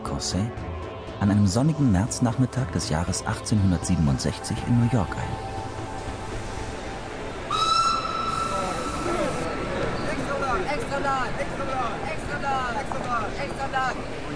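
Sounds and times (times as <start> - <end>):
speech: 0.2 - 5.6, 11.1 - 14.3
busy railway station hubbub in 1860s New York: 1.3 - 14.3
train whistle at a railway station platform in 1860s New York: 7.5 - 9.7.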